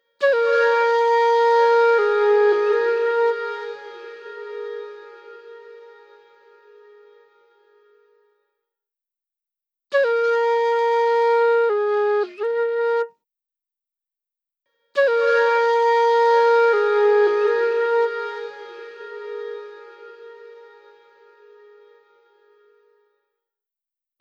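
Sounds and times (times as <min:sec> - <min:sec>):
flute playing in circular style: 0:00.2 - 0:07.2, 0:09.9 - 0:13.1, 0:15.0 - 0:22.4.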